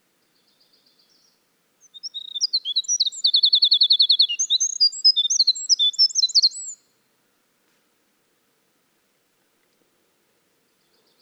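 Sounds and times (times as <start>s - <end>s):
winter wren singing: 1.8s - 6.8s.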